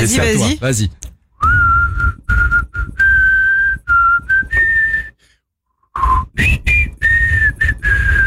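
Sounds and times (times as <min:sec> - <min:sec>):
speech: 0:00.0 - 0:01.6, 0:06.4 - 0:06.7
person whistling a catchy pop melody: 0:01.4 - 0:05.3, 0:05.9 - 0:08.2.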